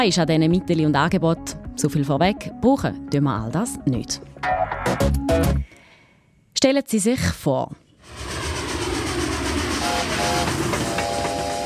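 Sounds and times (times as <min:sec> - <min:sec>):
speech: 0:00.0 - 0:05.8, 0:06.6 - 0:08.2
train rumbling with rolling rail noise: 0:08.0 - 0:11.6
train horn sounding in sustained tones: 0:09.7 - 0:11.6.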